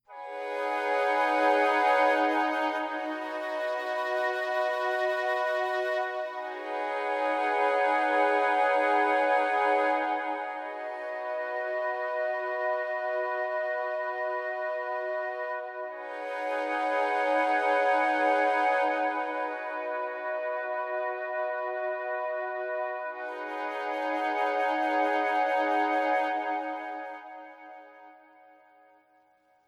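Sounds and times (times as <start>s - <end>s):
flute drones: 0.1s - 28.6s.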